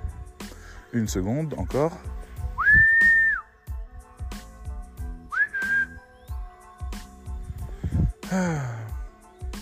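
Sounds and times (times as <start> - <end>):
speech: 0.9 - 2.2, 8.3 - 8.8
person whistling to call a dog: 2.6 - 3.6, 5.3 - 6.3.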